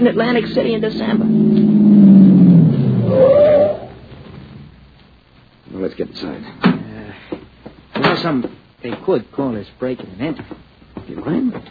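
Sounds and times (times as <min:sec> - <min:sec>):
speech: 0:00.0 - 0:02.4, 0:05.7 - 0:07.3, 0:08.2 - 0:11.6
car engine revving as the vehicle pulls off: 0:00.0 - 0:04.9.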